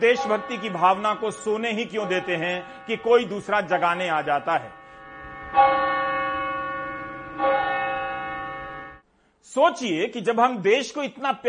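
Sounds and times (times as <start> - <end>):
speech: 0.0 - 4.8, 5.5 - 6.0, 9.5 - 11.4
large bell ringing: 0.0 - 9.0.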